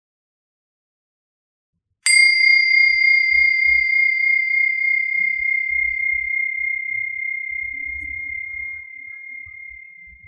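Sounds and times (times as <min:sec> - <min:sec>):
meditation bell struck and ringing: 0:02.1 - 0:10.2.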